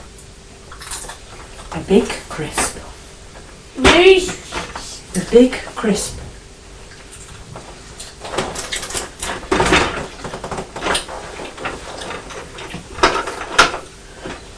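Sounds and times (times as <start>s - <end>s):
speech: 1.8s - 2.7s, 3.8s - 4.4s, 5.3s - 6.2s
door letterbox flap clattering: 8.2s - 13.9s.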